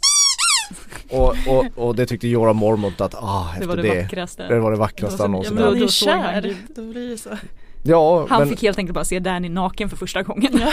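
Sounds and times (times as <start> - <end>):
voice imitating baby dragons singing with high-pitched squeals: 0.0 - 0.8
speech: 1.1 - 10.7.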